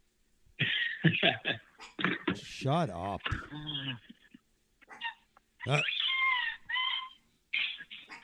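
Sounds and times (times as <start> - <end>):
speech: 1.0 - 4.2, 5.6 - 6.0
squeaky toy squealing, squeaked by a dog: 4.9 - 8.0.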